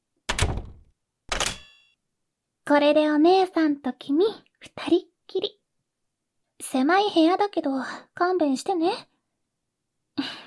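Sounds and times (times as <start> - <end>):
apartment front door being shut and locked: 0.3 - 1.7
speech: 2.7 - 5.6, 6.6 - 9.1, 10.2 - 10.4.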